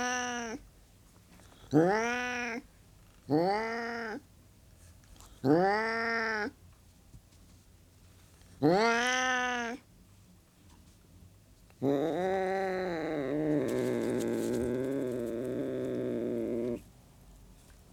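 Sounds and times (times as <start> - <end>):
Burmese cat yowling: 0.0 - 0.6, 1.8 - 2.6, 3.3 - 4.2, 5.4 - 6.6, 8.6 - 9.8, 11.8 - 16.8.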